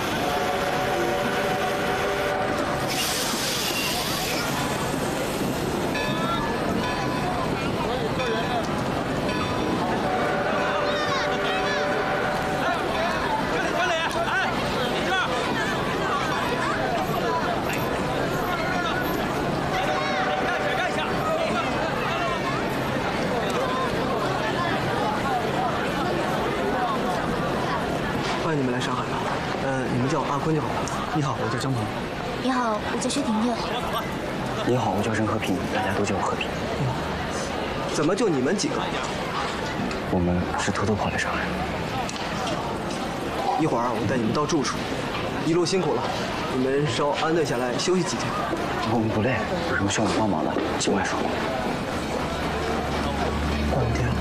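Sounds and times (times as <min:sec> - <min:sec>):
tonal horn-like sound: 0:00.0 - 0:04.4, 0:09.9 - 0:12.9
crowd murmur and chatter in a train station: 0:00.0 - 0:54.1
train rumbling: 0:00.0 - 0:54.1
speech: 0:32.8 - 0:33.8, 0:34.6 - 0:37.1, 0:38.0 - 0:39.2, 0:40.1 - 0:41.8, 0:43.6 - 0:51.8.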